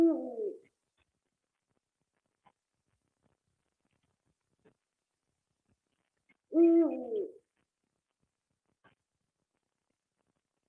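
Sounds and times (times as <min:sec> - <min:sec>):
Eurasian eagle-owl deep hoot: 0:06.5 - 0:07.4.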